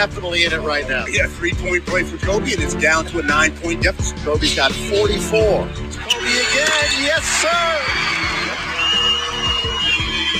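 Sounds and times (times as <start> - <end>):
speech: 0.0 - 8.4
large basketball arena crowd cheering: 6.0 - 10.3
whoops and yells from a basketball arena crowd: 6.0 - 10.3.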